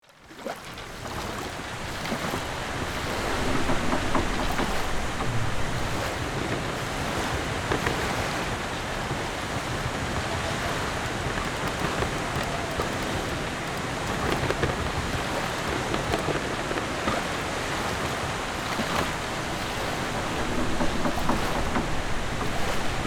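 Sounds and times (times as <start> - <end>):
ship at sea exterior ambience: 0.0 - 23.0.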